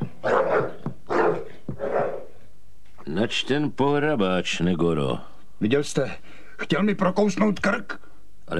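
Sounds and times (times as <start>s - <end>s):
agitated dog barking and growling: 0.0s - 2.4s
speech: 3.2s - 8.5s.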